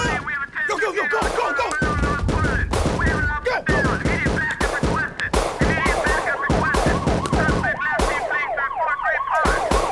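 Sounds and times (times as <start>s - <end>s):
wailing sirens rising and falling: 0.0s - 9.9s
rapid bursts of gunfire: 1.0s - 8.5s, 9.4s - 9.9s.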